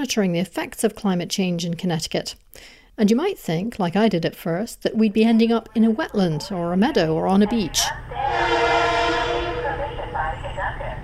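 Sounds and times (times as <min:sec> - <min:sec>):
speech: 0:00.0 - 0:08.9
train passing at a commuter train station: 0:06.8 - 0:11.0.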